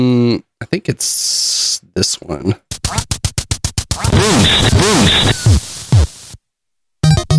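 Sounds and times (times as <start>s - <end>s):
speech: 0.0s - 3.2s
retro duck-hunting video game sharp electronic bursts: 2.7s - 6.4s
loud warbling chiptune tones: 3.9s - 6.1s.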